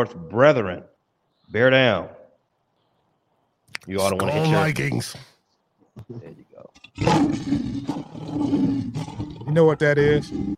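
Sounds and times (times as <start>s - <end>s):
speech: 0.0s - 0.9s, 1.5s - 2.2s, 3.8s - 5.3s, 6.0s - 10.5s
lion roaring: 6.8s - 10.5s.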